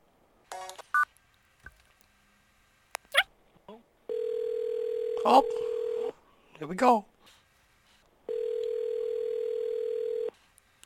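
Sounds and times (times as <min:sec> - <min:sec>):
telephone keypad dialing tones: 0:04.1 - 0:06.1, 0:08.3 - 0:10.3
speech: 0:05.2 - 0:05.7, 0:06.6 - 0:07.1.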